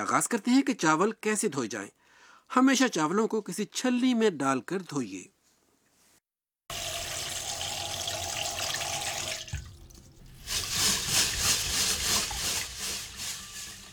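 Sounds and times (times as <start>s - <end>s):
speech: 0.0s - 5.3s
tap water filling a pot: 6.7s - 13.9s.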